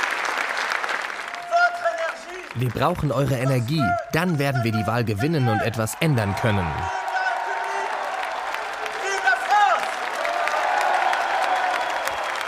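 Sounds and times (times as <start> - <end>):
large crowd applauding at the close of a political election campaign speech: 0.0 - 12.4
crowd cheers and whoops: 1.3 - 2.6, 6.2 - 12.4
speech: 2.6 - 7.0.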